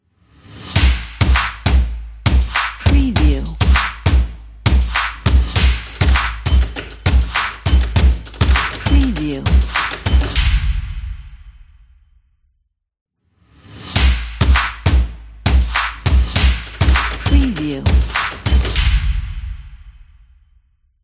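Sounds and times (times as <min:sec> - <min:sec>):
action stomp percussion logo: 0:00.7 - 0:11.3, 0:14.0 - 0:19.6.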